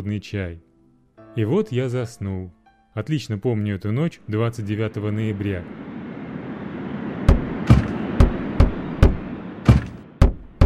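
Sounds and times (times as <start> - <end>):
speech: 0.0 - 0.7, 1.3 - 5.9
heavy loud banging on a door at night: 7.3 - 10.6.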